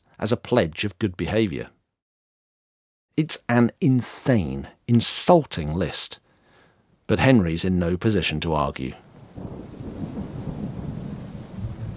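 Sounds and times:
speech: 0.2s - 1.8s, 3.2s - 6.2s, 7.1s - 9.7s
constant hiss of rain: 9.1s - 11.9s
deep continuous rumbling thunder: 9.1s - 11.9s.

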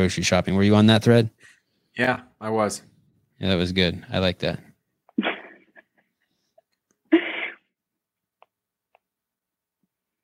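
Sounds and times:
speech: 0.0s - 5.3s
forceful sneezes: 7.1s - 7.7s.

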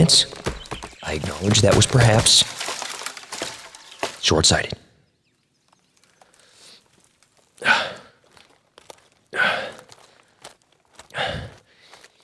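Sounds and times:
speech: 0.0s - 2.6s, 4.2s - 4.8s
heavy labored breathing while climbing down: 6.1s - 8.6s, 9.2s - 12.2s.

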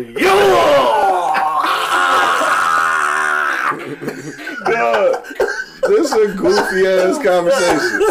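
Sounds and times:
speech: 0.0s - 0.7s, 4.0s - 8.0s
man screaming: 0.2s - 3.8s
laughter: 0.9s - 8.0s.

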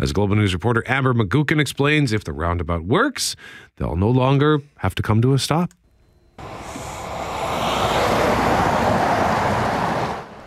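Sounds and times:
speech: 0.0s - 5.8s
cars and semi trucks passing at a highway intersection: 6.4s - 10.4s.

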